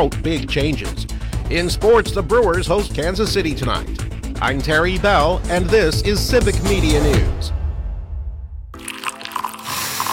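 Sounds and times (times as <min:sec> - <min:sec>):
speech: 0:00.0 - 0:07.6
coffee being poured into a cup: 0:08.8 - 0:10.1.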